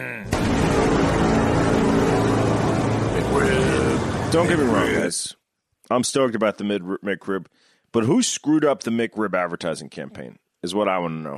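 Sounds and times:
car sound effect with roaring engine rumble: 0.3 - 5.0
speech: 4.3 - 11.3.

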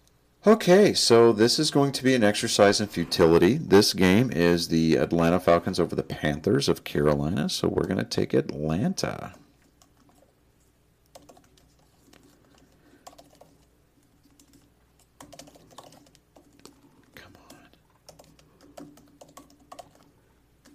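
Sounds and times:
speech: 0.4 - 9.4
fingers typing on a computer keyboard: 11.1 - 20.7.

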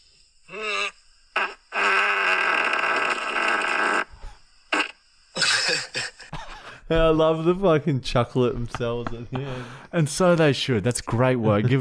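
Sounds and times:
loud drawn-out fart: 0.5 - 6.3
speech: 6.9 - 11.7.

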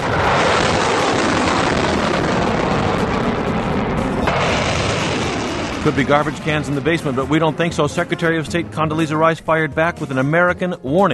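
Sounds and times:
long-range missile test launch roar: 0.0 - 8.5
speech: 5.8 - 11.1.

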